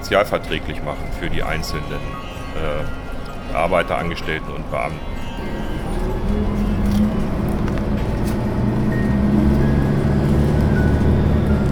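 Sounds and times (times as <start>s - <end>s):
moving bus engine rumble: 0.0s - 11.7s
speech: 0.1s - 6.4s.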